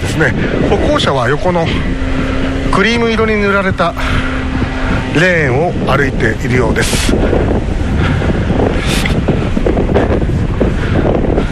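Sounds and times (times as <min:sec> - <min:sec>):
wind buffeting the microphone while cycling near the sea: 0:00.0 - 0:11.5
speech: 0:00.2 - 0:04.3, 0:05.2 - 0:08.2.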